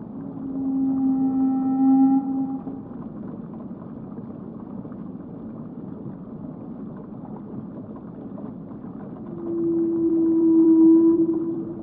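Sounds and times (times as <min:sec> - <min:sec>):
whale call, long tonal moan: 0:00.4 - 0:02.8, 0:09.3 - 0:11.8.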